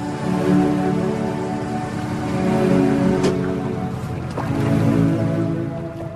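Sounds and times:
fishing boat motor droning on the water: 0.0 - 6.1
waves sloshing and splashing against the hull: 0.0 - 6.1.

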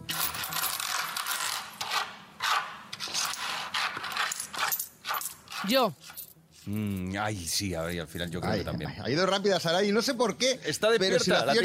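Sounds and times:
coins clattering and jingling as they are dropped and shuffled: 0.0 - 2.0, 3.0 - 5.4
speech: 5.6 - 11.6.

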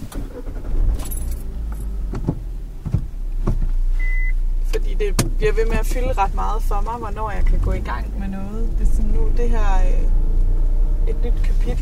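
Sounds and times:
clicks and soft thumps of person settling into a car: 0.0 - 4.3
low steady rumble: 0.0 - 11.8
car keys jangling: 0.8 - 2.0
brief electronic beep: 4.0 - 4.4
speech: 5.0 - 10.2, 11.1 - 11.8.

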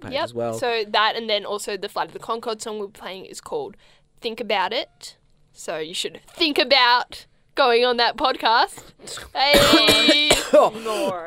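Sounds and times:
speech: 0.1 - 11.2
rough raspy person coughing: 9.5 - 11.2.

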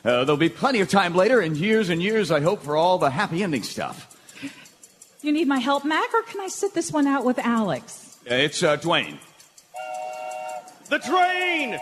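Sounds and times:
speech: 0.0 - 4.6, 5.2 - 9.3, 10.9 - 11.8
train whistle blowing: 9.7 - 11.8.

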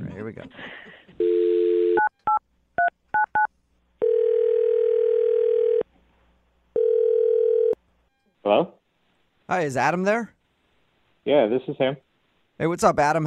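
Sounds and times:
speech: 0.2 - 1.3, 8.5 - 8.8, 9.5 - 10.4, 11.2 - 12.0, 12.6 - 13.2
telephone line dial tone: 1.2 - 2.1, 4.0 - 5.8, 6.8 - 7.8.

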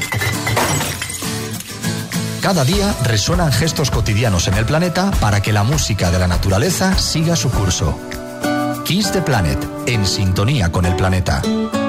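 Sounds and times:
glass bottles crashing and shattering into a recycling bin: 0.0 - 2.0
speech: 2.4 - 8.2, 8.9 - 11.8.

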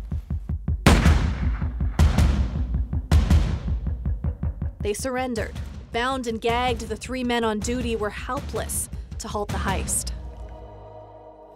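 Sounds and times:
steady fast low thumping rhythm: 0.0 - 10.8
gunshots with long tails: 0.9 - 2.6
speech: 4.8 - 10.1.

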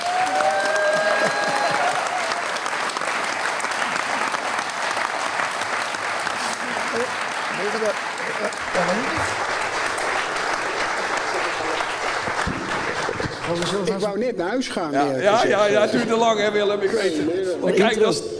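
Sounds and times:
audience applause: 0.0 - 14.2
speech: 7.9 - 9.5, 13.5 - 18.3.

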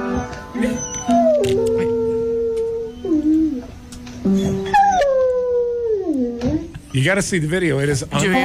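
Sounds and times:
dog howling: 0.1 - 3.8, 4.7 - 6.7
speech: 7.0 - 8.4.

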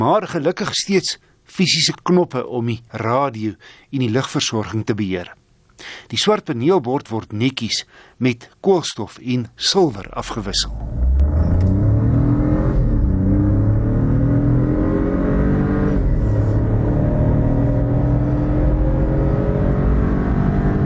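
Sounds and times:
speech: 0.0 - 11.2
Opel 1.2 petrol turbo car engine rated at 96 kW revving: 10.4 - 20.8.

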